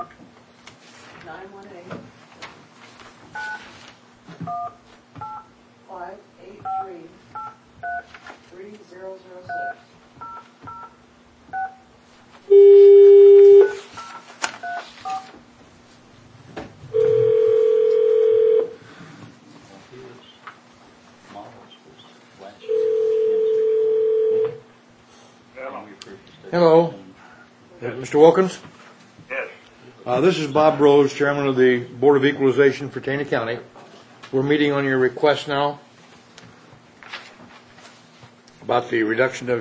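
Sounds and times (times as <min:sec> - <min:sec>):
speech: 0:00.0 - 0:00.2, 0:01.2 - 0:02.3, 0:04.3 - 0:05.3, 0:05.9 - 0:10.5, 0:28.0 - 0:28.8, 0:30.1 - 0:35.8, 0:38.7 - 0:39.5
keypad dialing beeps over a speakerphone: 0:04.5 - 0:05.4, 0:07.4 - 0:08.1, 0:09.5 - 0:10.9, 0:11.5 - 0:11.8, 0:12.5 - 0:15.2
speakerphone dial tone: 0:12.5 - 0:13.8, 0:17.0 - 0:18.7, 0:22.7 - 0:24.6.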